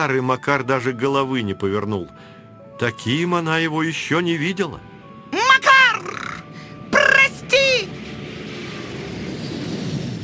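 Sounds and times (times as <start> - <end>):
speech: 0.0 - 4.9
roar of an airplane taking off: 6.5 - 10.2.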